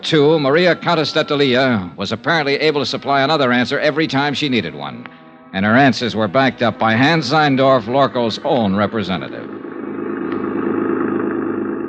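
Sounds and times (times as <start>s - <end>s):
speech: 0.0s - 9.6s
car engine running while driving through a harbor district: 6.6s - 11.8s.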